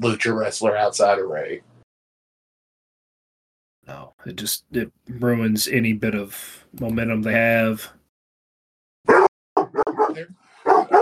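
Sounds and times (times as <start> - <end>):
speech: 0.0 - 1.7, 3.9 - 8.0, 10.2 - 10.4
dog barking loudly: 9.1 - 11.0.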